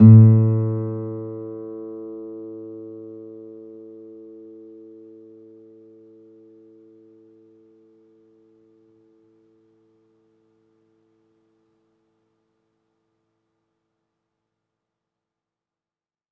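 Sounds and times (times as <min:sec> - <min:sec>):
classical guitar open string: 0:00.0 - 0:06.8.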